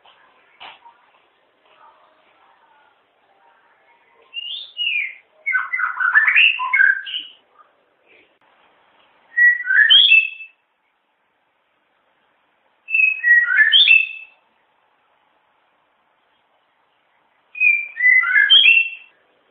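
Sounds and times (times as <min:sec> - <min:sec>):
wild white-rumped shama singing in forest: 0:04.3 - 0:07.4, 0:09.3 - 0:10.6, 0:12.9 - 0:14.4, 0:17.6 - 0:19.1.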